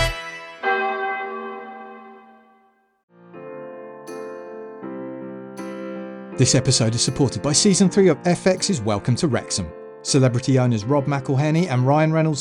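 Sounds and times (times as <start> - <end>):
church bells ringing in a full peal: 0.1 - 2.7
speech: 6.4 - 12.3.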